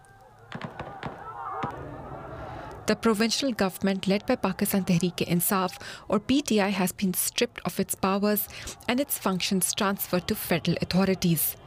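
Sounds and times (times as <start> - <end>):
gunshots fired by police to disperse protesters: 0.5 - 2.0
crowd voices of protesters: 0.5 - 11.6
speech: 2.9 - 11.6.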